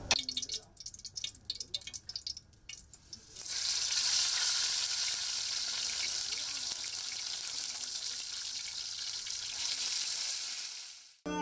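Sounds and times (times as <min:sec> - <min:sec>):
silver barb fish frying in hot oil: 0:00.1 - 0:11.2.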